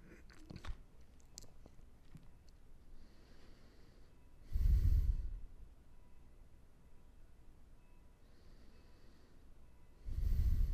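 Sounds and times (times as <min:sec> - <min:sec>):
slow deep belly breathing: 0:02.9 - 0:05.5, 0:08.2 - 0:10.7.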